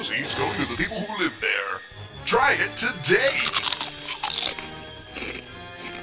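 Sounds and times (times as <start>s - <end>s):
speech: 0.0s - 1.4s, 2.3s - 3.7s
crunching of crispy black legumes: 3.2s - 6.0s
chewing crispy snack legumes: 3.4s - 6.0s.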